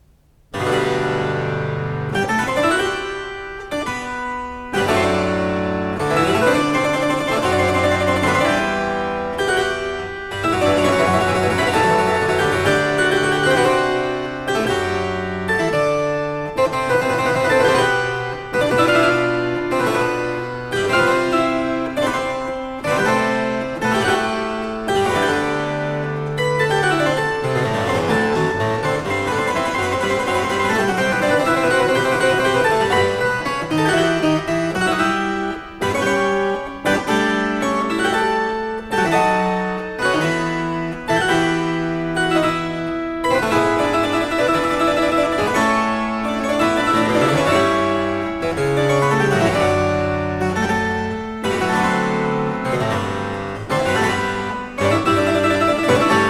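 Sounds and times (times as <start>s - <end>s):
harpsichord overture variation for one keyboard: 0.5s - 56.2s.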